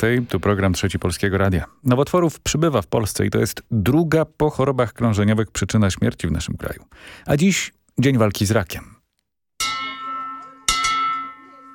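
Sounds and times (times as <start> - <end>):
speech: 0.0 - 9.0
ceremonial bell ringing: 9.6 - 11.7.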